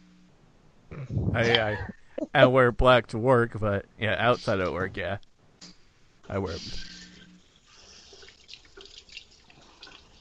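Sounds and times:
speech: 1.4s - 5.3s, 6.3s - 6.9s
running tap water rinsing out a glass beer bottle: 7.6s - 10.1s.

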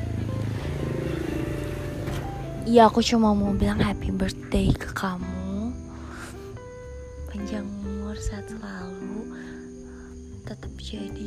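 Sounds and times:
motorcycle engines droning: 0.0s - 4.0s
speech: 2.6s - 5.4s, 7.4s - 9.1s, 10.5s - 11.2s.

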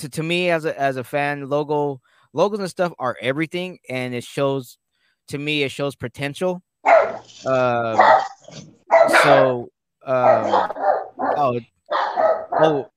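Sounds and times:
speech: 0.0s - 6.7s, 7.3s - 11.8s, 12.6s - 12.9s
dogs barking: 6.8s - 12.9s.

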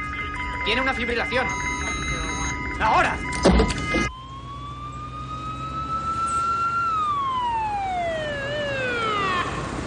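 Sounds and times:
ambulance siren wailing: 0.0s - 9.8s
speech: 0.7s - 1.7s, 2.8s - 4.2s.

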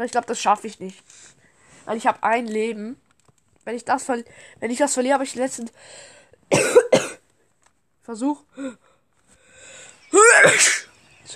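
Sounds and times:
speech: 0.0s - 3.0s, 3.6s - 6.9s, 8.0s - 8.9s, 10.1s - 11.3s
single loud sneeze: 10.1s - 10.9s.

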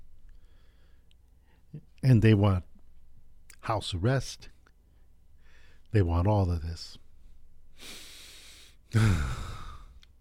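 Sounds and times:
deep breath: 0.3s - 1.7s, 4.9s - 5.9s, 7.7s - 10.1s
speech: 1.7s - 2.7s, 3.7s - 4.5s, 5.9s - 7.0s, 7.8s - 8.0s, 8.9s - 9.5s.

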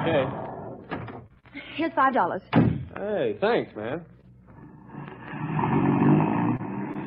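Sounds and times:
speech: 0.1s - 0.5s, 1.8s - 4.1s
car engine rumbling as the vehicle pulls away: 4.6s - 7.0s.

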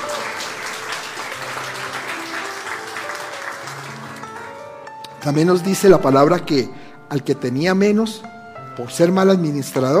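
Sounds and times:
crowd applauding: 0.0s - 6.0s
speech: 5.2s - 9.9s.

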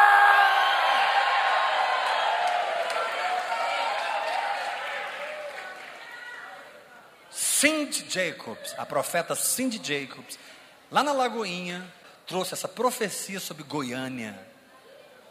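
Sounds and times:
large crowd giving a victory shout and cheering: 0.0s - 7.1s
speech: 7.6s - 14.5s.

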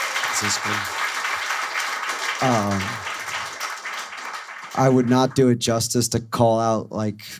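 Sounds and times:
crowd applauding: 0.0s - 5.6s
speech: 0.4s - 1.1s, 2.4s - 3.1s, 4.8s - 7.3s.

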